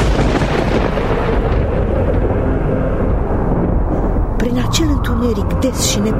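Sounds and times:
deep rolling thunder: 0.0 - 6.1
speech: 5.3 - 6.1.

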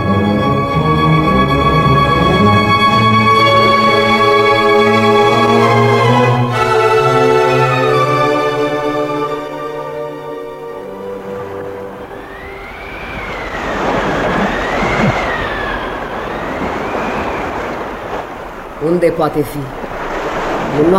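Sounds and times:
sustained tonal drone: 0.0 - 18.8
crashing surf: 0.0 - 20.9
rushing wind on the seashore at night on the island of Jersey: 0.0 - 20.9
speech: 19.0 - 19.8, 20.8 - 20.9.

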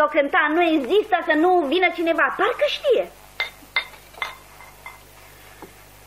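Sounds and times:
speech: 0.0 - 3.2
drinking glasses clinking as they are set down: 3.4 - 5.0.

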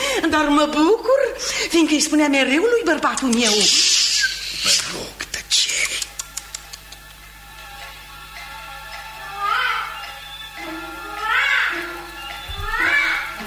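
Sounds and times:
faint steady hum: 0.0 - 13.4
speech: 0.2 - 4.0, 4.6 - 4.9
baby crying in whiny wails: 9.3 - 10.0, 10.8 - 13.4.

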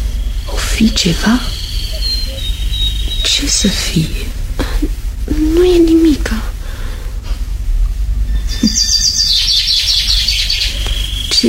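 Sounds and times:
cuckoo singing: 0.0 - 4.5, 8.4 - 11.4
birds chirping outdoors: 0.0 - 6.4, 8.2 - 11.4
steady low rumble: 0.0 - 11.4
speech: 0.8 - 1.6, 3.4 - 4.4, 5.3 - 6.5.

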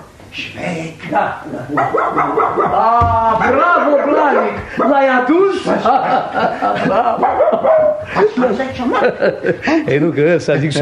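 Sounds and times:
speech: 0.4 - 10.8
laughter: 1.4 - 10.1
dog barking and yelping: 1.6 - 5.1, 7.1 - 8.1.

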